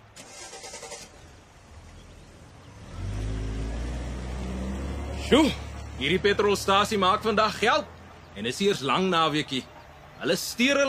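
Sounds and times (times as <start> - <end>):
car engine revving at a petrol station after refuelling: 2.4 - 7.1
speech: 5.3 - 10.8.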